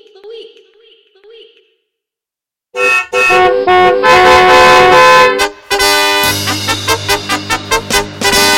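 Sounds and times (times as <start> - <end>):
loud blaring car horn honks: 2.8 - 8.5.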